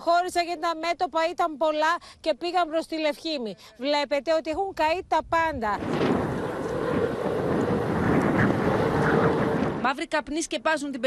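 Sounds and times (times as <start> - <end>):
speech: 0.0 - 6.2, 9.9 - 11.0
gusty wind buffeting on the microphone: 4.7 - 9.9
strong wind blowing: 5.4 - 9.9.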